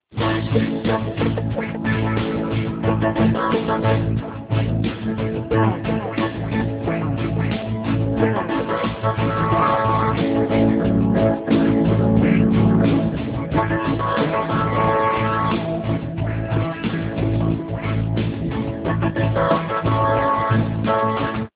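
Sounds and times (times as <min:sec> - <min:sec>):
reggae music: 0:00.0 - 0:21.5.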